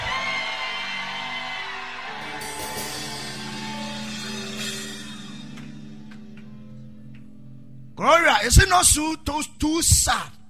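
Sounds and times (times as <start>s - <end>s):
audience shouting and cheering: 0.0s - 6.2s
speech: 8.0s - 10.4s.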